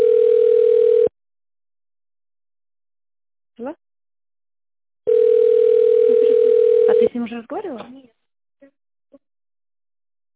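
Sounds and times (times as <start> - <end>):
steady electronic telephone tone: 0.0 - 1.1, 5.1 - 7.1
speech: 7.4 - 8.1.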